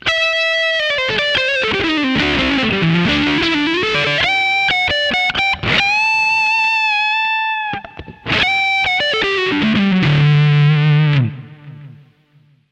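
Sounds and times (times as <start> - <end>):
Strat electric guitar solo on neck and middle: 0.0 - 12.6.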